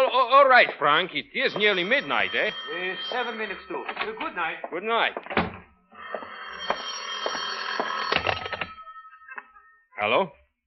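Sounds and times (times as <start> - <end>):
speech: 0.3 - 5.5, 10.0 - 10.4
telephone bell ringing: 1.4 - 4.4, 5.9 - 9.6.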